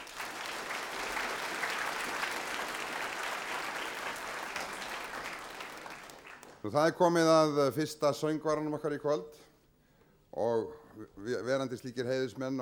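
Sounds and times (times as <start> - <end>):
concert audience applauding jazz big band soloists in Reykjavík City Hall: 0.0 - 6.6
speech: 6.6 - 9.5, 10.4 - 12.6.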